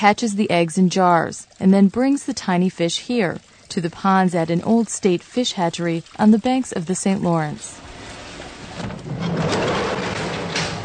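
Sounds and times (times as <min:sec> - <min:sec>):
speech: 0:00.0 - 0:07.8
steady rushing noise: 0:00.0 - 0:10.8
heavy door of a stone pump house grinding and creaking open: 0:07.8 - 0:10.8.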